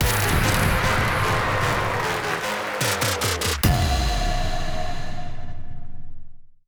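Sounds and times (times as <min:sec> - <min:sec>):
electronic dance music: 0:00.0 - 0:05.1.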